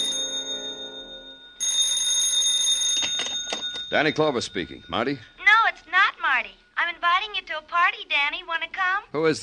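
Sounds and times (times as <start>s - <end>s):
telephone bell ringing: 0.0s - 5.9s
speech: 3.9s - 5.3s, 6.3s - 9.4s.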